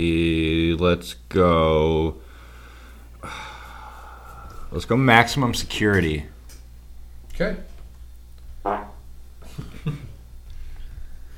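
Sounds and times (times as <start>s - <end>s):
speech: 0.0s - 2.2s, 3.2s - 3.5s, 4.7s - 6.3s, 7.4s - 7.7s, 8.6s - 8.8s
parrot making a fart-like sputter: 8.6s - 9.0s.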